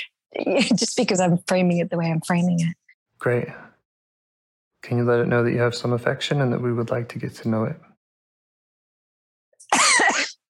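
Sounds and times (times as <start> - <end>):
speech: 0.3 - 3.7, 4.8 - 7.9
harsh raspy cough: 9.6 - 10.4.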